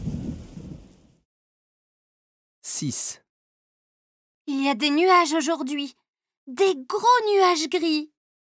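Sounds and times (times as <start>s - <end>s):
low rumbling thunder from a thunderstorm: 0.0s - 1.2s
speech: 2.7s - 3.2s, 4.5s - 8.1s.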